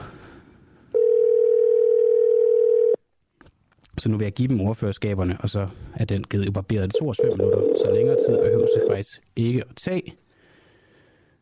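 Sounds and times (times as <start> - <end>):
low noise: 0.0 - 11.4
telephone ringback tone for an outgoing call: 1.0 - 3.0, 7.0 - 9.0
speech: 4.0 - 10.2.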